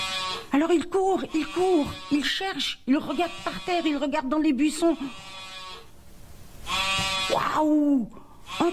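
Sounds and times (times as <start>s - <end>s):
small sheep bleating: 0.0s - 4.2s, 4.9s - 5.9s, 6.6s - 7.6s, 8.4s - 8.7s
speech: 0.5s - 5.4s, 7.3s - 8.7s.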